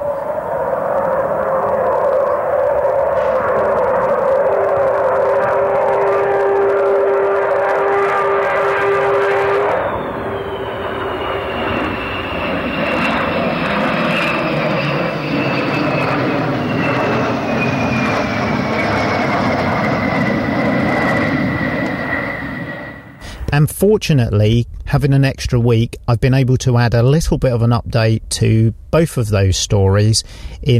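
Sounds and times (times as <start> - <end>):
Avro Vulcan bomber jet flying past: 0.0 - 23.6
speech: 23.8 - 30.7.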